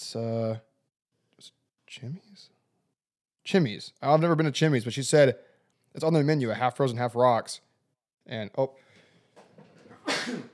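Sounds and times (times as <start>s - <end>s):
speech: 0.1s - 0.7s, 1.4s - 2.6s, 3.4s - 7.6s, 8.2s - 8.8s, 10.2s - 10.5s
faint intake of breath: 8.8s - 9.4s
single sharp sneeze: 9.9s - 10.5s.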